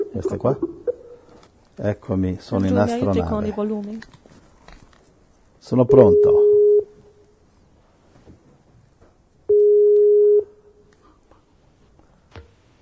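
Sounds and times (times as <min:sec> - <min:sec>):
faint noise: 0:00.0 - 0:12.8
speech: 0:00.2 - 0:00.8, 0:01.8 - 0:04.2, 0:05.6 - 0:06.4
Skype call connecting tone beep: 0:05.9 - 0:06.9, 0:09.5 - 0:10.5.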